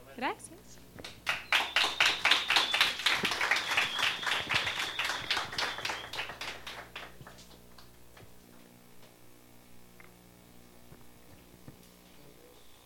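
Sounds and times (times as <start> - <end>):
speech: 0.2 - 1.2
small audience applauding: 1.0 - 7.9.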